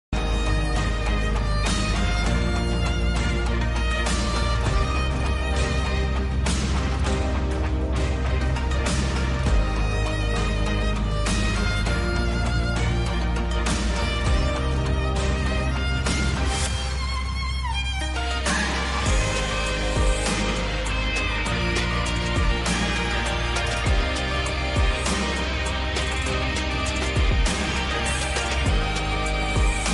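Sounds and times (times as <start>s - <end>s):
instrumental music: 0.1s - 29.9s.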